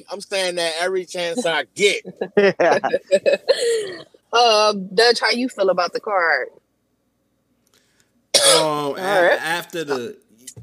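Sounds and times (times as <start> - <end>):
speech: 0.0 - 6.6, 8.5 - 10.2
laughter: 0.2 - 4.0, 8.6 - 10.1
loud cough: 1.4 - 4.0, 8.4 - 10.0.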